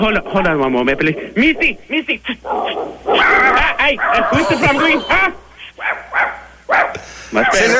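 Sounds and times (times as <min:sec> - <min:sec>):
speech: 0:00.0 - 0:07.7
several dogs barking and yipping: 0:02.5 - 0:05.0, 0:05.8 - 0:07.7
laughter: 0:04.2 - 0:05.4.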